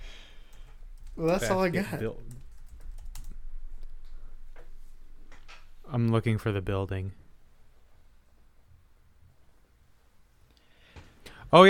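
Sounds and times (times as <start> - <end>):
low hum: 0.0 - 11.6
speech: 1.2 - 2.4, 5.9 - 7.2
typing on a computer keyboard: 2.2 - 3.4.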